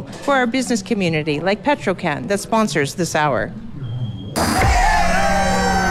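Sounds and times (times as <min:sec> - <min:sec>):
speech: 0:00.2 - 0:03.6
crowd cheering and whooping: 0:04.4 - 0:05.8
people yelling: 0:04.4 - 0:05.8.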